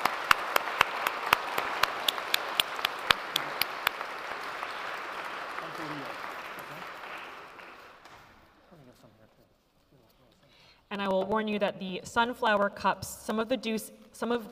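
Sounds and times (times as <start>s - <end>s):
audience applause: 0.0s - 8.6s
speech: 11.0s - 14.5s.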